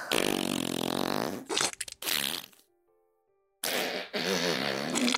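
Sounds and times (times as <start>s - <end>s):
flatulence bursts from a woman: 0.1s - 2.7s, 3.6s - 5.1s.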